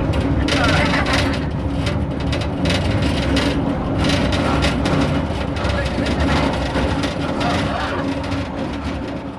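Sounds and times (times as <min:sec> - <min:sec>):
deep mechanical rumble: 0:00.0 - 0:09.3
mine cage lift rattling and clanking as it descends: 0:00.0 - 0:09.3.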